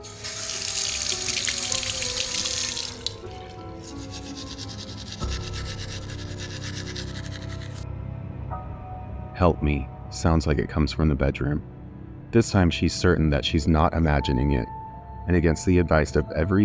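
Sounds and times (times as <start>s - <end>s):
running tap water: 0.0s - 7.8s
teeth being brushed at a bathroom sink: 0.3s - 7.8s
speech: 9.4s - 16.6s.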